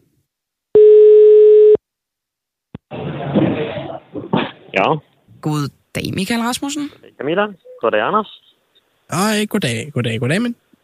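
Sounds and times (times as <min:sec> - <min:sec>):
telephone ringing tone: 0:00.8 - 0:01.8
speech: 0:04.8 - 0:08.4, 0:09.1 - 0:10.6.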